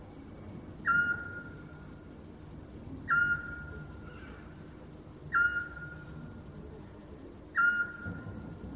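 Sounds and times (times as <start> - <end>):
quiet hum: 0.0 - 8.7
Eurasian scops owl whistled call: 0.8 - 1.6, 3.1 - 4.3, 5.3 - 6.1, 7.5 - 8.2.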